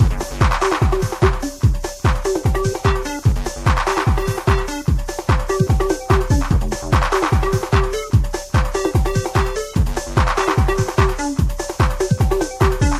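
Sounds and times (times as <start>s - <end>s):
techno loop: 0.0s - 12.9s.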